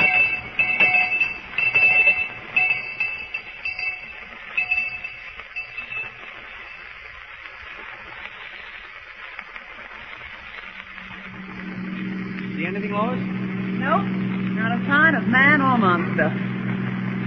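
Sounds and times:
shrill school lunch bell ringing: 0.0 - 6.9
faint low rumble: 0.0 - 17.2.

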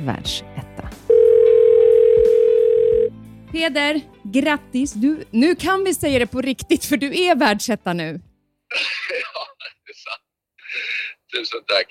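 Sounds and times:
speech: 0.0 - 0.7, 3.5 - 8.9, 11.3 - 11.8
telephone call dial tone: 1.1 - 3.1
laughter: 8.7 - 11.0.

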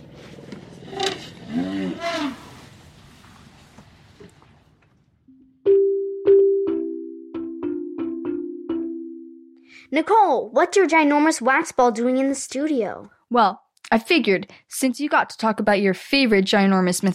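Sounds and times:
elephant low rumbling calls: 0.0 - 5.1
elephant trumpeting: 0.8 - 2.7
plucked musical notes: 5.3 - 9.7
speech: 9.9 - 17.1.

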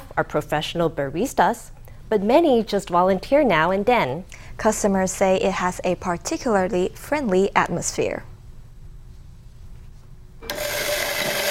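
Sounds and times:
speech: 0.2 - 8.3
coffee grinder grinding beans: 10.4 - 11.4.

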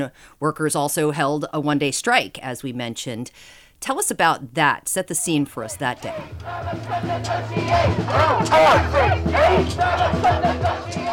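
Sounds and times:
speech: 0.0 - 11.1
large crowd chanting in unison outdoors at a picket rally: 5.7 - 11.1
rhythmic rising shouts: 6.0 - 11.1.

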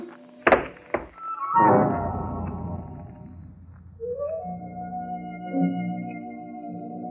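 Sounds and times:
sharp knocks: 0.5 - 1.2
low sustained droning tones: 1.7 - 6.1
heavy booming thud of a man hit on the head on a gravel path: 1.8 - 4.5.

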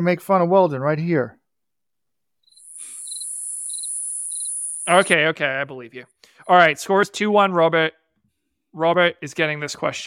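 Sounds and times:
speech: 0.0 - 1.4, 4.9 - 8.0, 8.7 - 10.0
cricket chirping sound effect: 2.5 - 5.1.

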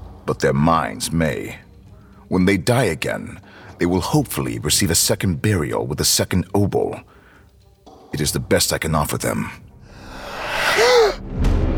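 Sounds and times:
speech: 0.3 - 1.6, 2.3 - 7.2, 8.1 - 9.6
startled gasp: 9.9 - 11.2.

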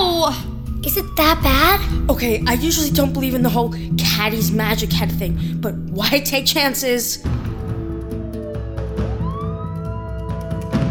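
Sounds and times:
dense low rumbling noise: 0.0 - 6.0
speech: 0.3 - 7.5
police car siren wailing: 8.2 - 10.9.

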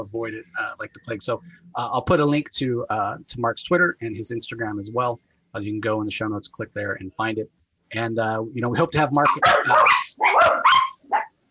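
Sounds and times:
speech: 0.0 - 10.6
dogs barking: 9.2 - 11.4.

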